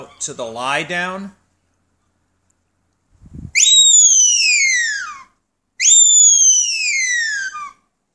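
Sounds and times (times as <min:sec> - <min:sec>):
speech: 0:00.2 - 0:01.4
high-pitched dog-training whistle blasts: 0:03.6 - 0:05.2, 0:05.8 - 0:07.8.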